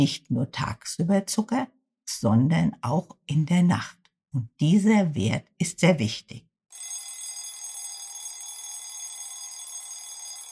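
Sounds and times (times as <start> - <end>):
speech: 0.0 - 6.5
electronic alarm clock ringing: 6.7 - 10.5.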